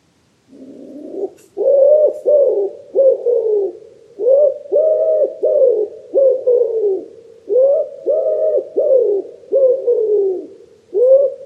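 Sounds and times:
common wood pigeon cooing: 0.5s - 11.4s.

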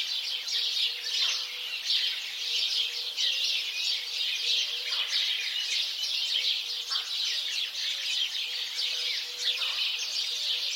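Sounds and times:
house sparrows chirping together: 0.0s - 10.7s.

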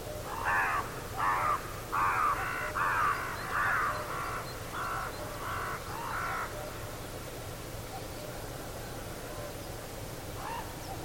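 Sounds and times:
bird giving harsh cawing calls: 0.2s - 6.9s, 10.4s - 11.0s.

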